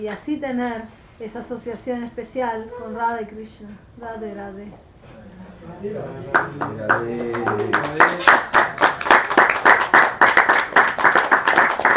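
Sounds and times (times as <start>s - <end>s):
speech: 0.0s - 8.5s
audience clapping at a devotional talk: 6.2s - 11.9s.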